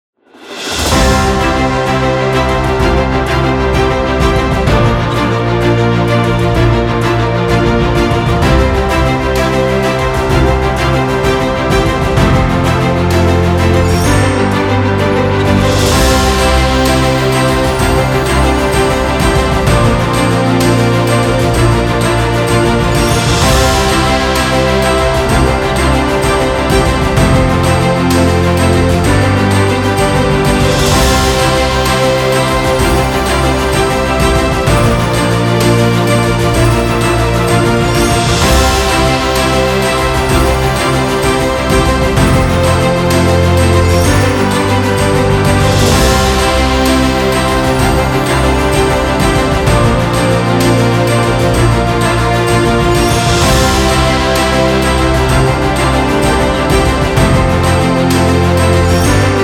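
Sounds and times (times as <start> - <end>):
uplifting ceremony background music: 0.3 - 59.4.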